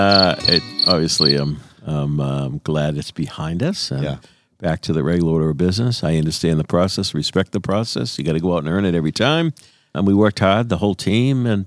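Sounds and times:
crickets chirping: 0.0 - 1.5
speech: 0.0 - 11.6.

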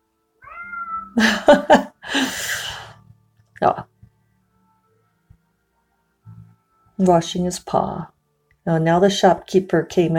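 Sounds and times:
cat meowing outside shop door: 0.4 - 1.2
speech: 1.2 - 1.9, 3.6 - 3.9, 7.0 - 8.1, 8.7 - 10.1.

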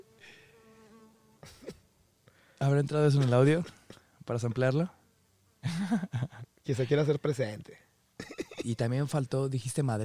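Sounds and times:
insect buzzing in the jungle: 0.0 - 1.5
speech: 2.6 - 5.0, 5.9 - 7.8, 8.6 - 10.0
laughter: 5.6 - 6.9.

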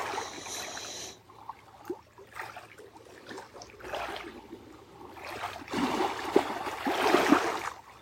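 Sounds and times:
lake water lapping and sloshing: 0.0 - 8.0.

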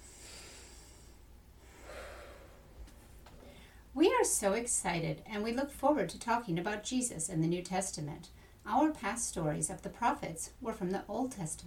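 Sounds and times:
soft airy deep breaths: 0.0 - 3.9
speech: 4.0 - 11.6.

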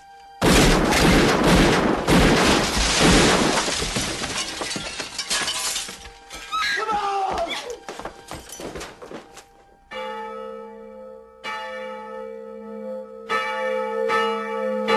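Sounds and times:
church bells ringing: 0.0 - 14.9
brief burst of clattering noise: 2.2 - 9.7.

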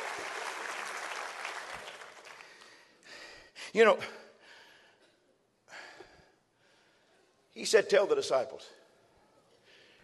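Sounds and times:
audience clapping hands in applause: 0.0 - 2.7
speech: 3.7 - 4.2, 7.6 - 8.8.

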